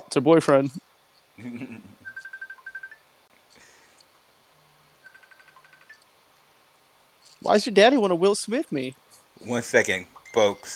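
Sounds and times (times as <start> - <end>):
noise: 0.0 - 10.7
speech: 0.1 - 1.9, 7.4 - 10.7
mobile phone ringing with a pulsing electronic trill: 2.0 - 3.1, 5.0 - 6.0, 10.2 - 10.7.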